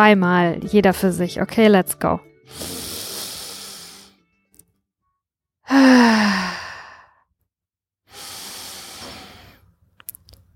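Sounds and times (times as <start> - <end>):
speech: 0.0 - 2.8, 5.7 - 6.5
deep breath in through the nose during a breathing exercise: 2.5 - 4.2, 8.1 - 9.7.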